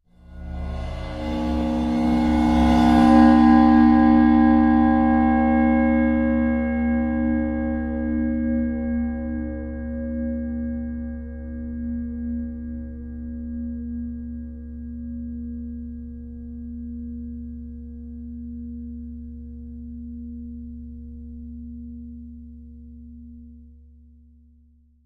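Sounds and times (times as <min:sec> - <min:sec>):
old ride cymbal bowed: 0:00.2 - 0:22.4.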